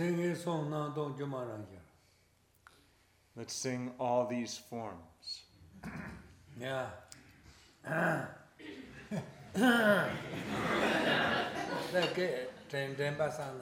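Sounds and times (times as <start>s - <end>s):
speech: 0.0s - 1.9s, 3.4s - 7.0s, 7.8s - 13.6s
person clearing throat with rough guttural rasps: 5.8s - 6.3s, 7.8s - 8.9s, 9.5s - 10.2s
voiced vocal sounds: 7.8s - 8.9s, 9.5s - 10.2s
laughter: 8.6s - 13.2s.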